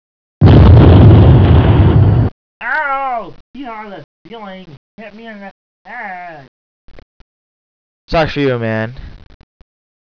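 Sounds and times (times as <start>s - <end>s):
bomb explosion in a video game: 0.4s - 2.3s
speech: 3.6s - 6.5s, 8.1s - 9.2s.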